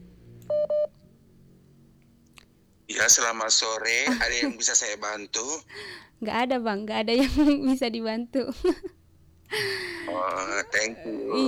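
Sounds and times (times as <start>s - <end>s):
telephone dialing beeps for a phone call: 0.5s - 0.9s
speech: 3.0s - 8.9s, 9.5s - 11.4s.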